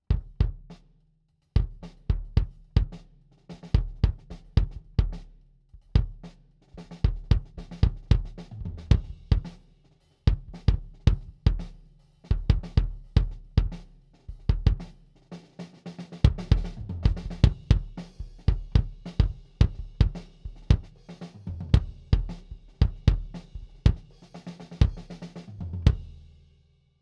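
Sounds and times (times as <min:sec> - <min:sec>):
kick drum head: 0:00.1 - 0:00.8, 0:01.6 - 0:03.0, 0:03.7 - 0:05.2, 0:05.8 - 0:09.5, 0:10.3 - 0:14.9, 0:16.2 - 0:21.0, 0:21.6 - 0:24.1, 0:24.8 - 0:25.2, 0:25.8 - 0:26.1.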